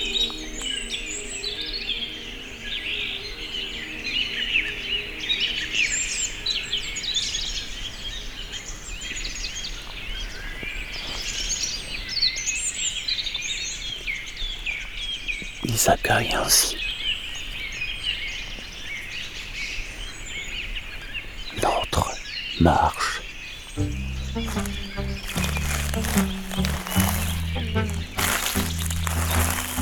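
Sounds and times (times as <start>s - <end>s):
dense chorus of many birds singing at sunrise on the Cagire mountain slopes: 0.0s - 29.8s
speech: 15.8s - 16.8s, 22.6s - 23.2s
steady outdoor hum: 23.8s - 29.8s.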